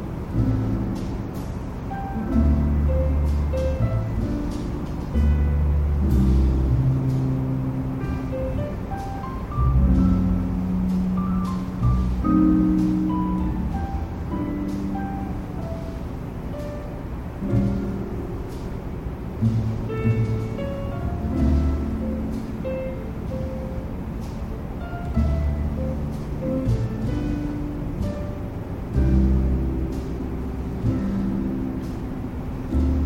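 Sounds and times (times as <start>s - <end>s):
soft jazz playing in the next room: 0.0s - 33.0s.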